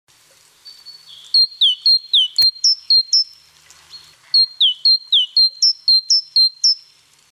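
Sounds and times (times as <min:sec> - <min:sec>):
great tit song: 0:00.6 - 0:06.9.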